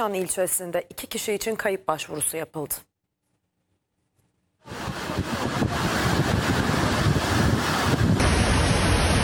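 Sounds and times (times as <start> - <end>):
speech: 0.0 - 2.9
heavy evening downpour in Giresun: 4.6 - 9.2.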